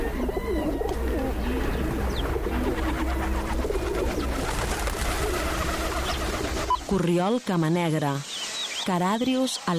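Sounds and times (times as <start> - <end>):
rock doves cooing: 0.0 - 7.0
smaller birds chirping: 0.0 - 9.7
speech: 6.9 - 9.7.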